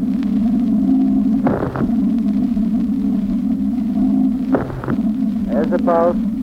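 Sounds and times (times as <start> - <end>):
steady low electronic droning hum: 0.0 - 6.4
short radar pulse aimed at the moon: 1.4 - 2.2, 4.5 - 5.3
speech: 5.8 - 6.4.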